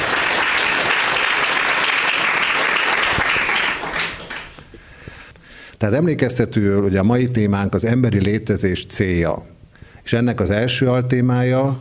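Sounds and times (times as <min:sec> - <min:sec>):
audience applause: 0:00.0 - 0:04.7
speech: 0:05.8 - 0:11.7.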